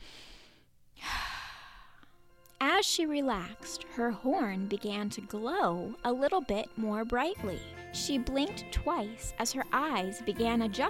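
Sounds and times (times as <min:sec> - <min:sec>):
deep breath drawn in by a storyteller: 0:00.0 - 0:02.2
speech: 0:02.8 - 0:10.8.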